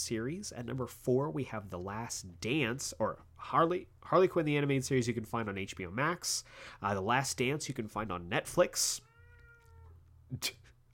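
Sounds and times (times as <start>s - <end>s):
speech: 0.0s - 9.1s, 10.3s - 10.6s
cat meowing: 9.0s - 10.1s.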